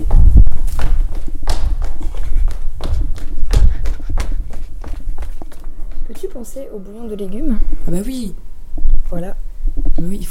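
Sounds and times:
running footsteps of someone dashing off: 0.0s - 7.4s
speech: 6.4s - 8.5s, 9.1s - 10.2s.

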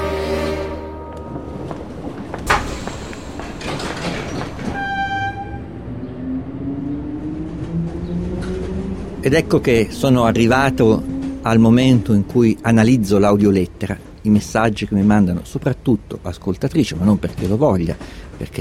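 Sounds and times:
train horn: 0.0s - 1.7s, 4.7s - 6.1s
train carriage and rail noise: 0.0s - 18.6s
train motor whine: 1.1s - 9.2s
speech: 9.2s - 18.6s.

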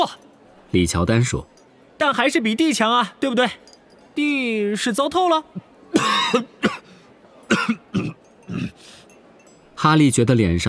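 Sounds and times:
speech: 0.0s - 6.6s, 9.8s - 10.6s
boy clearing throat: 5.9s - 6.9s, 7.5s - 8.8s
boy coughing after pretending to choke on a bread roll: 5.9s - 8.8s.

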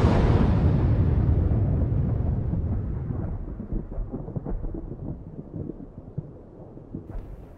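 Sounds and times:
huge explosion shattering a mountain: 0.0s - 5.2s
deep rumble with scattered crackles: 0.0s - 7.5s.

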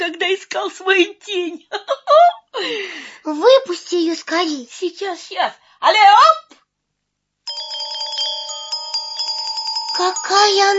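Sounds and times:
speech: 0.1s - 6.6s, 10.0s - 10.7s
fairy speaking in bright tinkling bell-like chimes: 7.5s - 10.7s.

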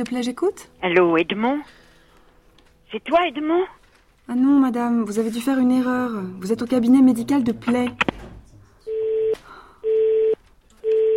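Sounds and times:
speech: 0.0s - 1.8s, 2.9s - 8.1s
telephone busy tone on a medical office line after the caller hangs up: 8.9s - 11.1s.

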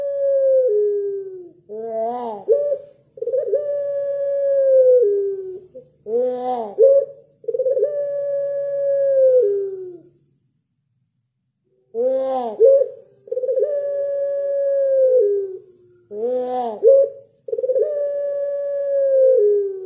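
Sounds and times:
white Barbary dove cooing: 0.0s - 10.1s, 12.0s - 19.8s
faint low hum: 0.0s - 19.8s.

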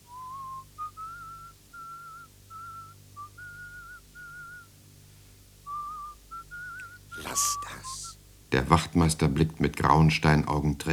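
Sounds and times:
man softly whistling a melody: 0.0s - 4.8s, 5.6s - 8.2s
speech: 7.4s - 10.9s.

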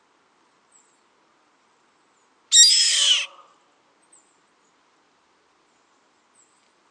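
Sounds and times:
Yellow-headed Caracara Milvago chimachima screeching: 2.5s - 3.4s.

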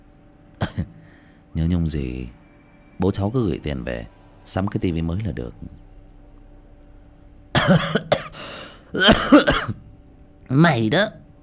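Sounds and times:
unwell woman coughing hard: 0.6s - 1.0s, 7.6s - 9.8s
speech: 1.6s - 2.4s, 3.0s - 5.8s, 7.7s - 8.0s, 8.9s - 9.6s, 10.5s - 11.2s.

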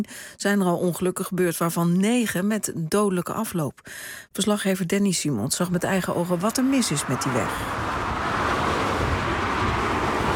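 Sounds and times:
speech: 0.0s - 8.1s
roar of cars speeding past on a provincial road: 5.8s - 10.3s.

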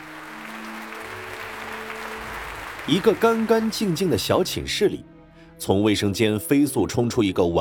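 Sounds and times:
crowd applause welcoming a stage performance: 0.0s - 4.6s
speech: 2.9s - 7.5s.

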